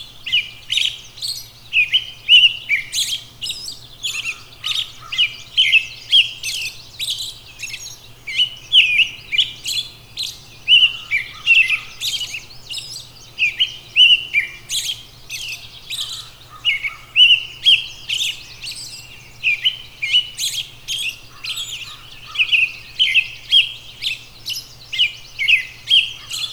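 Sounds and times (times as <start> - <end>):
robin singing: 0.0 - 26.5.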